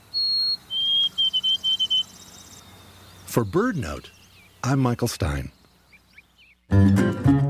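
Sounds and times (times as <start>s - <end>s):
White-throated sparrow whistling its song in an evergreen: 0.0s - 4.6s, 5.5s - 6.7s
speech: 3.4s - 5.6s, 6.7s - 7.3s.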